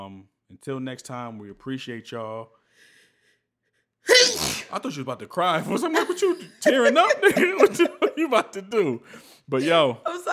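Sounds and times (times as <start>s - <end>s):
speech: 0.1s - 2.9s, 4.1s - 10.3s
sneeze: 4.1s - 4.8s
laughter: 5.6s - 9.0s.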